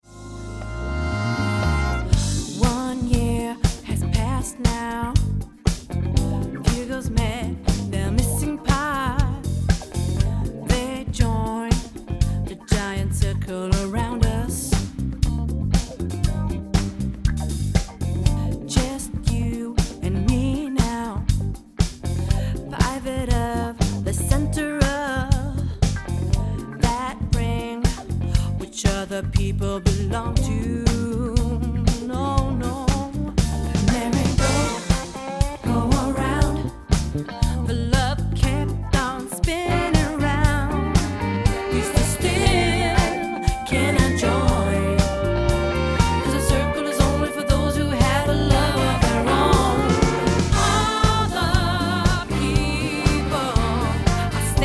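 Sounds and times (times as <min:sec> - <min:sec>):
funky music: 0:00.0 - 0:54.6.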